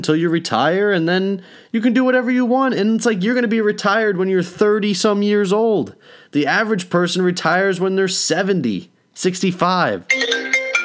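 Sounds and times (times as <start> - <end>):
person's voice: 0.0 - 10.1
speech: 0.0 - 10.4
phone ringtone playing from a laptop: 10.1 - 10.8.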